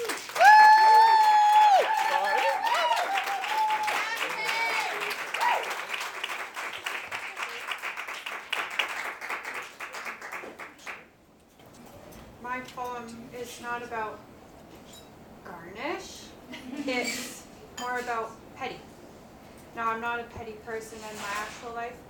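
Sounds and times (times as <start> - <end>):
person whooping or whistling: 0.0 - 5.8
audience applause for open mic performer: 0.0 - 11.0.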